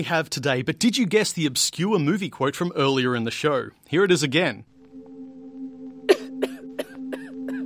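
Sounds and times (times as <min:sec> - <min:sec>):
speech: 0:00.0 - 0:04.7
person coughing: 0:06.1 - 0:07.6.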